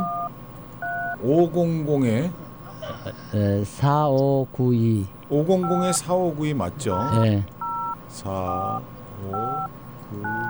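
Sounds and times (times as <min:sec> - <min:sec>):
phone keypad beeps at a radio station: 0:00.0 - 0:01.2, 0:05.6 - 0:06.1, 0:06.9 - 0:10.4
speech: 0:01.2 - 0:02.4, 0:03.0 - 0:10.4
laughter: 0:01.3 - 0:04.4, 0:05.5 - 0:07.4, 0:08.2 - 0:10.4.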